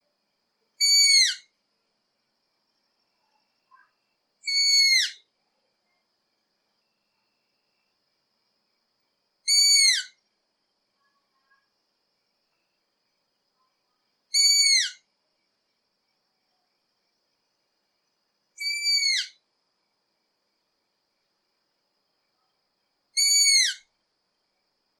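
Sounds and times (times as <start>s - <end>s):
long-eared owl calling: 0.8s - 1.5s, 4.4s - 5.2s, 9.5s - 10.2s, 14.3s - 15.0s, 18.6s - 19.4s, 23.2s - 23.9s.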